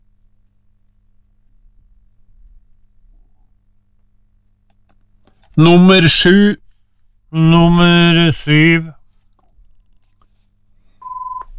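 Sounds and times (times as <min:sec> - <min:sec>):
low hum: 0:00.0 - 0:11.5
speech: 0:05.6 - 0:06.6, 0:07.3 - 0:09.0
telephone line beep: 0:11.0 - 0:11.5.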